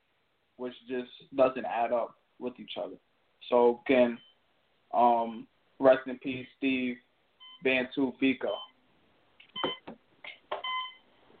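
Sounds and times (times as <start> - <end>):
speech: 0.6 - 4.3, 4.9 - 7.0, 7.6 - 8.7
electronic alarm beeping: 7.4 - 7.7, 8.5 - 8.8, 9.6 - 9.9, 10.6 - 11.0.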